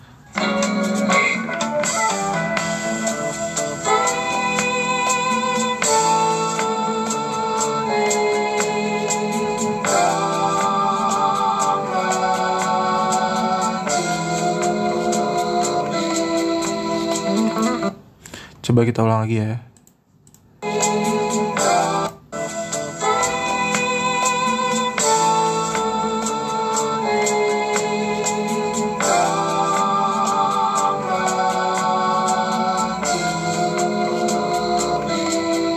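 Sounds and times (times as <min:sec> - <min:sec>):
jazz recording playing: 0:00.0 - 0:19.8, 0:20.4 - 0:35.7
speech: 0:18.8 - 0:19.7.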